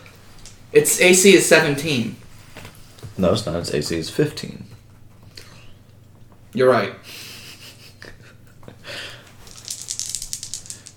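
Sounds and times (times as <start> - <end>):
speech: 0.7 - 2.2, 3.2 - 4.8, 6.6 - 7.2
small hard dice clattering as they are shuffled by hand: 9.4 - 10.9.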